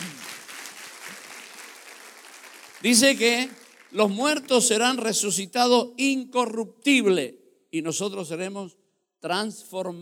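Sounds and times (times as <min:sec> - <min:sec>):
church congregation applauding during a worship service: 0:00.0 - 0:04.8
speech: 0:02.8 - 0:10.0.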